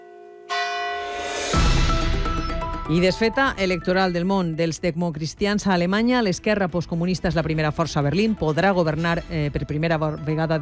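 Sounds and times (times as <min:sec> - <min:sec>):
church bell in an old bell tower tolling the hour: 0:00.0 - 0:01.7
speech: 0:02.9 - 0:10.6.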